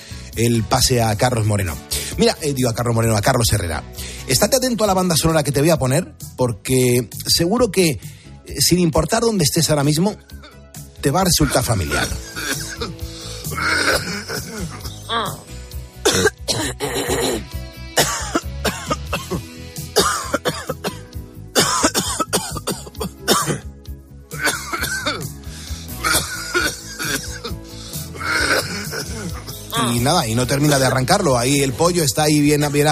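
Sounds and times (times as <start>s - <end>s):
speech: 0.4s - 12.9s, 30.1s - 32.9s
coughing: 10.3s - 10.8s, 11.4s - 23.7s, 24.3s - 25.4s, 26.0s - 30.1s
throat clearing: 11.9s - 15.4s, 16.0s - 23.7s, 24.4s - 25.3s, 28.2s - 29.9s.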